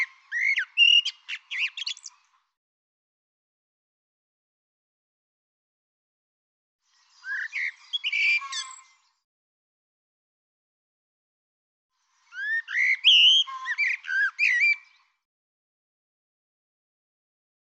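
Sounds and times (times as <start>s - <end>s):
bird song of whistled notes with twittering: 0.0s - 2.3s, 6.9s - 9.2s, 12.1s - 15.2s.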